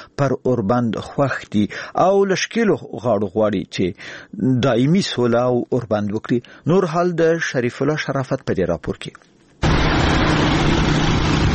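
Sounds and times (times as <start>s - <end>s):
speech: 0.2s - 9.3s
motorcycles and cars of armed fighters roaring: 9.6s - 11.5s.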